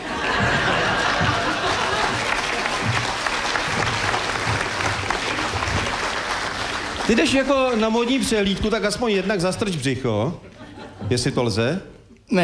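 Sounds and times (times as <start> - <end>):
scattered laughs: 0.0 - 2.7
crowd murmurs: 0.0 - 7.1
sustained applause from a sizable audience: 0.0 - 9.2
speech: 7.1 - 10.5, 11.1 - 12.4.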